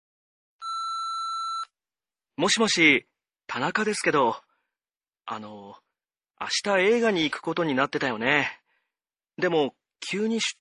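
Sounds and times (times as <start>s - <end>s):
answering machine beep: 0.6s - 1.7s
speech: 2.4s - 4.5s, 5.3s - 5.8s, 6.4s - 8.6s, 9.4s - 10.5s.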